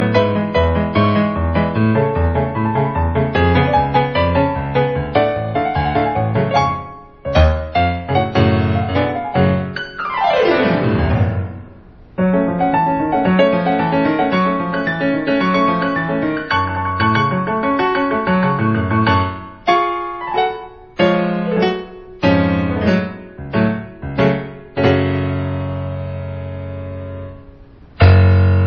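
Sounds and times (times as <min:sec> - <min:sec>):
piano ringtone: 0:00.0 - 0:11.6, 0:12.2 - 0:25.6.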